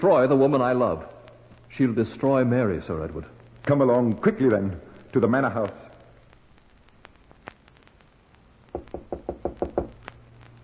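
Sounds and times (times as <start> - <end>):
speech: 0.0 - 5.8
firm knocks on a wooden door: 8.7 - 9.9.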